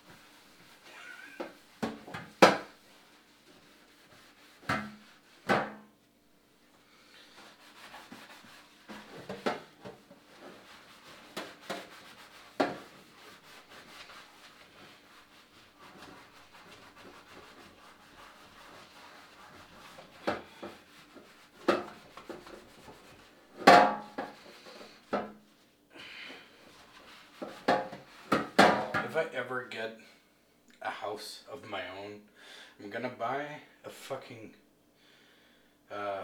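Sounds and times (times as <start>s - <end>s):
scrubbing a dirty pan: 0.0s - 5.6s, 7.0s - 25.5s, 26.4s - 28.7s
speech: 29.2s - 30.2s, 30.8s - 34.6s.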